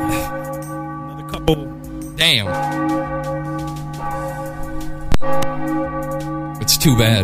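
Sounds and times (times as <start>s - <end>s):
church bell ringing: 0.0s - 7.2s
speech: 1.5s - 3.0s, 6.8s - 7.2s.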